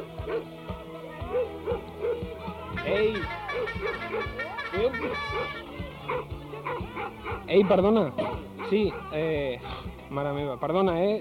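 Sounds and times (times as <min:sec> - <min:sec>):
dog barking in short, sharp yaps: 0:00.2 - 0:00.5, 0:01.3 - 0:02.2, 0:03.5 - 0:04.5, 0:05.2 - 0:09.2
speech: 0:02.9 - 0:03.5, 0:04.8 - 0:06.2, 0:07.1 - 0:11.2.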